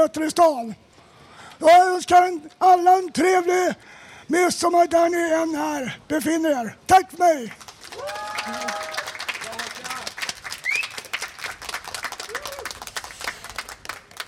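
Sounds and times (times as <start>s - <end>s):
speech: 0.0s - 0.9s, 1.6s - 8.7s
crowd applauding: 7.5s - 14.2s
voices calling out and whooping: 7.9s - 9.3s, 12.2s - 12.8s.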